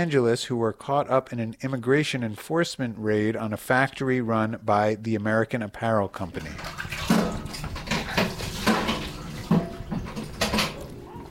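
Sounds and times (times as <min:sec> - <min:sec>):
speech: 0:00.0 - 0:06.9
empty bucket plunging into a barrel of water outside a small house: 0:06.3 - 0:10.8.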